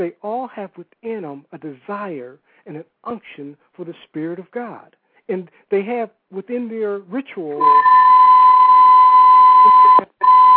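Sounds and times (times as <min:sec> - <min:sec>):
speech: 0:00.0 - 0:08.0, 0:09.6 - 0:10.4
loud steady electronic beep tone: 0:07.6 - 0:10.5.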